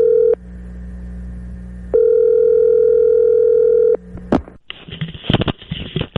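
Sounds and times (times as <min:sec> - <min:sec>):
telephone ringback tone: 0:00.0 - 0:00.4, 0:01.9 - 0:04.0.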